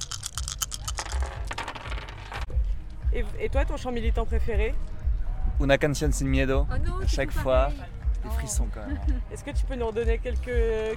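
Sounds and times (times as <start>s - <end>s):
dice rattling: 0.0s - 2.5s
speech: 3.2s - 4.9s, 5.6s - 10.9s.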